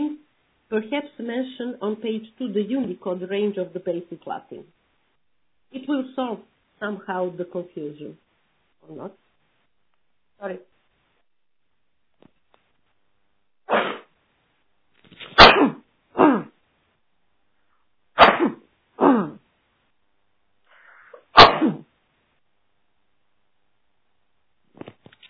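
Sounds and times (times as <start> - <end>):
speech: 0.7 - 4.8, 5.7 - 8.2, 8.8 - 9.2, 10.4 - 10.7
person with the flu sneezing: 13.7 - 14.1, 15.2 - 16.6, 18.2 - 19.4, 20.8 - 21.9.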